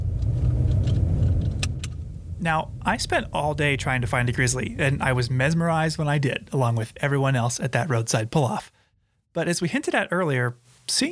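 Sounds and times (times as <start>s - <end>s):
car engine rumbling: 0.0s - 8.6s
speech: 2.4s - 11.1s.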